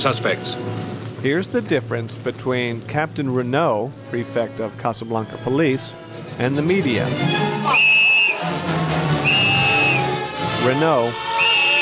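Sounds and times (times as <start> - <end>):
speech: 0.0 - 9.4, 10.6 - 11.4
police whistle blasts: 7.6 - 8.5, 9.2 - 10.2, 11.2 - 11.8.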